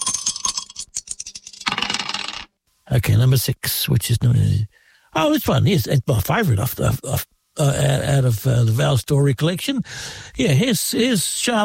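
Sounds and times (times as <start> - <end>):
dice tossed and rolling to pick a song: 0.0 - 2.5
speech: 2.9 - 11.6.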